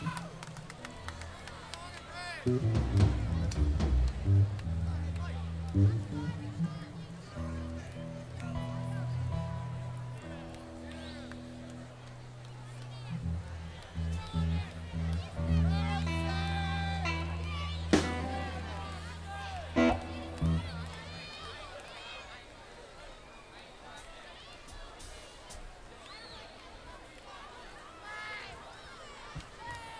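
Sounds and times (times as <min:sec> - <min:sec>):
instrument tuning: 0:02.5 - 0:21.4.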